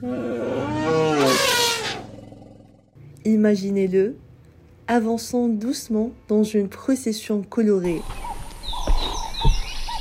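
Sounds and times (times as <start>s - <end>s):
speech: 0.0s - 0.4s, 3.3s - 4.2s, 4.9s - 8.2s
elephant trumpeting: 0.0s - 2.8s.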